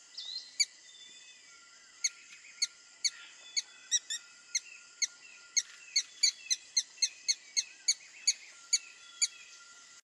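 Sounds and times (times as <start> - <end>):
red-stained woodpecker uttering high squeaky notes: 2.0 - 9.4.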